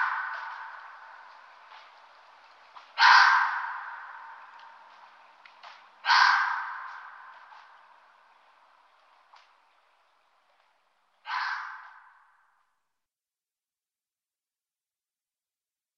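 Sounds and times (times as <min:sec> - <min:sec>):
red fox screaming hoarse and raspy: 0:03.0 - 0:04.3, 0:06.0 - 0:07.2, 0:11.3 - 0:12.0.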